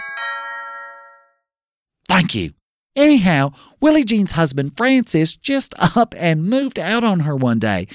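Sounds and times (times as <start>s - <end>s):
doorbell chiming two-note ding-dong: 0.0s - 1.5s
speech: 2.2s - 7.9s.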